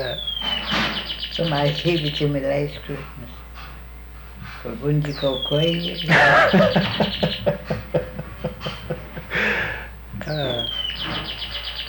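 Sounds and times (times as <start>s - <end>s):
bird chirping and whistling calls: 0.0s - 3.1s, 4.5s - 11.8s
speech: 1.4s - 3.4s, 4.6s - 8.0s
laughter: 5.9s - 10.6s.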